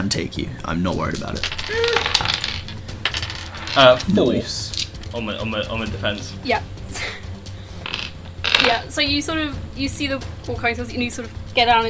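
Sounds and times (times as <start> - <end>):
speech: 0.0 - 2.4, 3.7 - 7.1, 8.6 - 11.8
handful of dice clattering across a hard surface: 1.1 - 5.1, 7.8 - 8.8.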